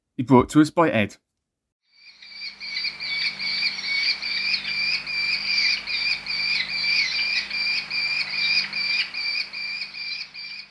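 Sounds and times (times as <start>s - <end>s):
speech: 0.2s - 1.3s
merlin falcon giving a rapid shrill chattering call: 2.2s - 10.6s.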